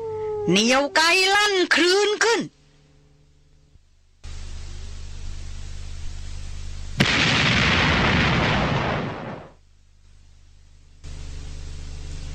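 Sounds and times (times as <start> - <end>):
steady hiss: 0.0 - 12.3
speech: 0.5 - 2.6
heavy .458 hunting rifle gunshot fired upward into the sky: 7.0 - 9.6.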